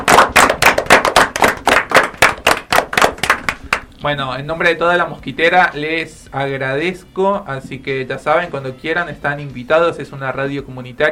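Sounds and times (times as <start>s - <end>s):
small group clapping hands: 0.0s - 4.0s
speech: 4.0s - 11.1s.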